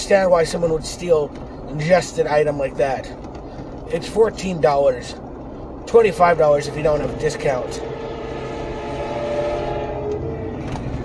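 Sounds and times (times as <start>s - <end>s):
passing train rumbling: 0.0s - 11.0s
speech: 0.1s - 3.3s, 3.9s - 5.2s, 5.9s - 7.9s
train horn: 6.1s - 11.0s.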